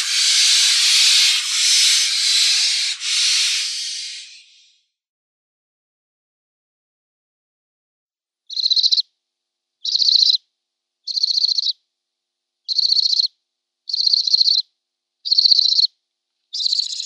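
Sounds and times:
downy barn owl young hissing: 0:00.0 - 0:04.7.

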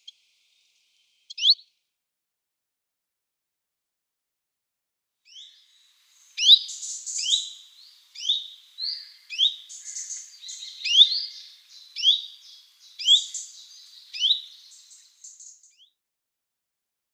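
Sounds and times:
high bird chirps and twittering notes: 0:01.3 - 0:01.6, 0:05.3 - 0:05.6, 0:06.2 - 0:15.9
common chiffchaff calls: 0:06.1 - 0:15.6.

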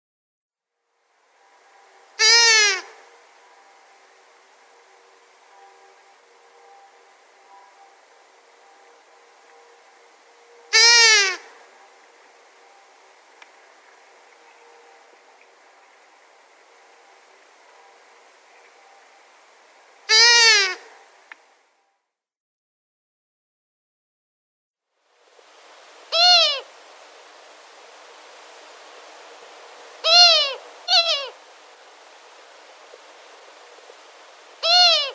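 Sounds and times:
female Long-eared Owl display call: 0:01.5 - 0:16.8, 0:20.0 - 0:21.1, 0:26.0 - 0:35.1.

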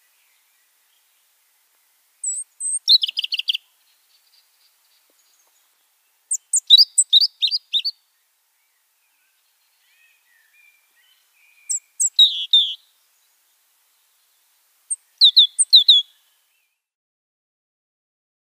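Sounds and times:
Tenerife robin subspecies superbus singing on Tenerife: 0:02.2 - 0:16.8.

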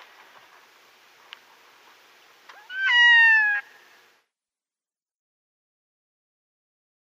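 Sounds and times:
red-throated diver display call: 0:02.6 - 0:03.8.

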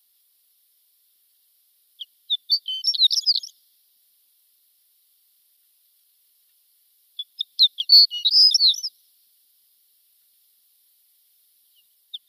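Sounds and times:
shore lark song: 0:02.0 - 0:03.6, 0:07.2 - 0:09.0, 0:11.7 - 0:12.2.

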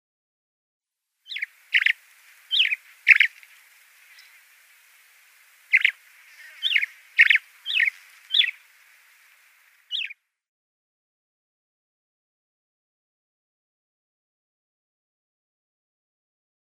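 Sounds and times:
Desert Lark call: 0:01.2 - 0:10.2.

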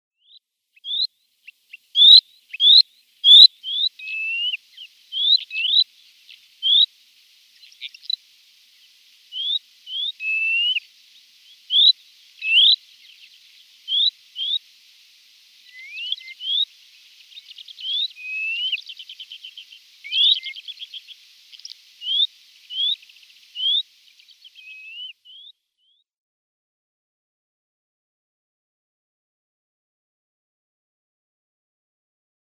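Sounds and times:
Thick-billed Lark flight song: 0:00.2 - 0:26.0.

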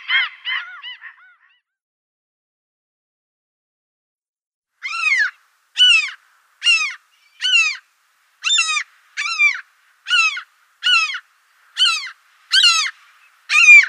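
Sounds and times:
common gull calls: 0:00.0 - 0:01.6, 0:04.8 - 0:13.8.

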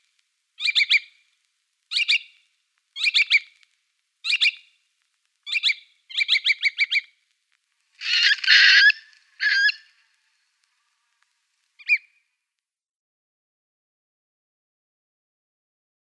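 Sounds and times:
little curlew calls: 0:00.6 - 0:01.1, 0:01.9 - 0:02.3, 0:03.0 - 0:03.6, 0:04.2 - 0:04.7, 0:05.5 - 0:07.1, 0:08.0 - 0:10.1, 0:11.8 - 0:12.2.

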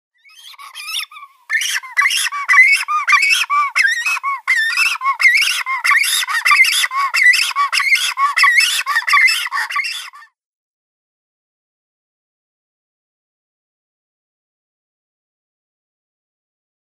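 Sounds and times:
Great Cormorant nestlings calling: 0:00.3 - 0:10.0.

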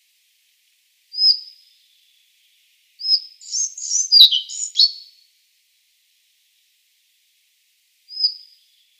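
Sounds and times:
collared flycatcher singing: 0:03.0 - 0:05.1, 0:08.1 - 0:08.9.

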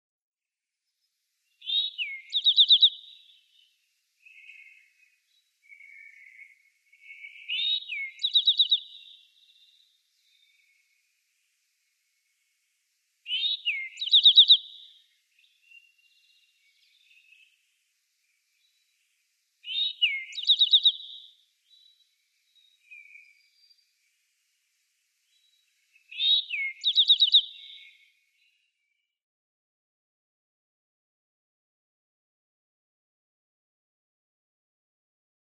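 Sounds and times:
Eastern Towhee singing: 0:01.4 - 0:11.0, 0:13.2 - 0:24.2, 0:25.2 - 0:29.1.

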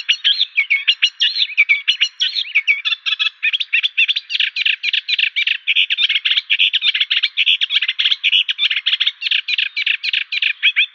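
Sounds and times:
Eurasian reed warbler singing: 0:00.0 - 0:10.9.

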